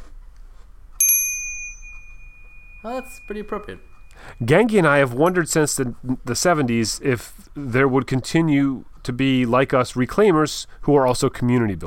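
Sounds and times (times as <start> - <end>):
faint hum: 0.0 - 11.8
bicycle-style bell ringing: 1.0 - 4.5
speech: 2.8 - 11.8.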